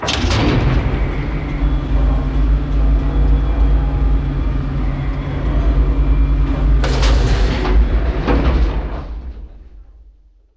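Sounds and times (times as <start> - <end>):
cavalry machinery: 0.0 - 9.8.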